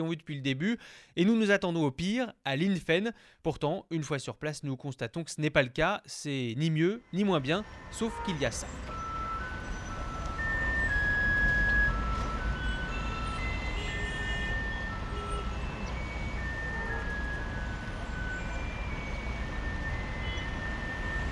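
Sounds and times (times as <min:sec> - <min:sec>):
speech: 0:00.0 - 0:09.0
tinny electronic melody from a street water-spraying truck loudspeaker: 0:07.3 - 0:21.3
street noise and traffic rumble: 0:07.4 - 0:21.3.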